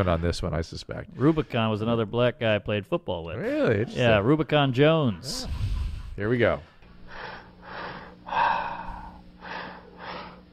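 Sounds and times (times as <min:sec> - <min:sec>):
speech: 0:00.0 - 0:06.7
slow breaths during a relaxation breathing exercise: 0:07.0 - 0:10.5.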